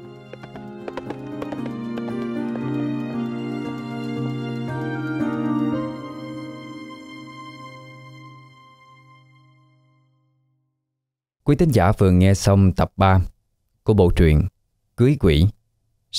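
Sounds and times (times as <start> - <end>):
galloping horse carrying two riders: 0.0 - 6.2
music: 0.0 - 11.0
speech: 11.5 - 16.1.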